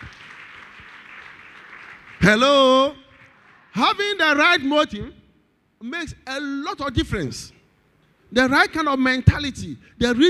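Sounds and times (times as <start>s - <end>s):
audience clapping hands: 0.0s - 4.4s
speech: 2.2s - 3.0s, 3.8s - 5.2s, 5.8s - 7.6s, 8.3s - 10.2s.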